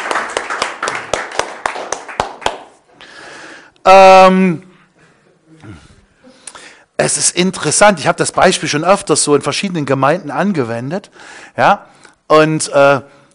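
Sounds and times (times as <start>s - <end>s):
audience rhythmic hand clapping: 0.0s - 2.9s
speech: 3.9s - 4.7s, 7.0s - 13.2s.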